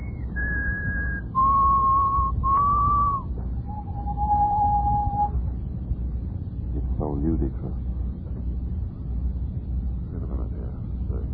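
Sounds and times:
person whistling long steady notes: 0:00.0 - 0:05.3
constant low rumble: 0:00.0 - 0:11.3.

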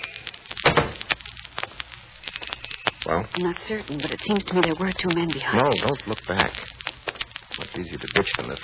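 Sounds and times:
glass lobby door swinging thump: 0:00.6 - 0:01.0
speech: 0:03.1 - 0:06.7, 0:07.7 - 0:08.6.

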